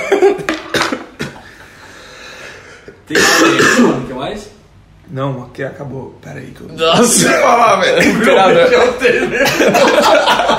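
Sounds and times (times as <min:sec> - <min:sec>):
person coughing: 0:00.0 - 0:01.5, 0:02.9 - 0:04.1
speech: 0:03.1 - 0:04.5, 0:05.1 - 0:10.5
laughter: 0:07.3 - 0:10.5.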